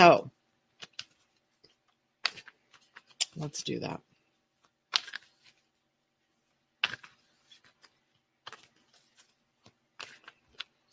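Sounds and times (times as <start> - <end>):
oracle cards shuffled and drawn from a deck: 0.7 - 3.4, 4.6 - 5.7, 6.8 - 10.9
speech: 3.4 - 4.1.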